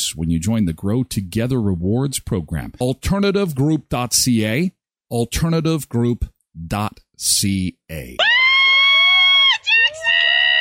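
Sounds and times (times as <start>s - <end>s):
speech: 0.1s - 8.3s
loud shrill cheering and shouting with high-pitched yells: 8.2s - 10.5s.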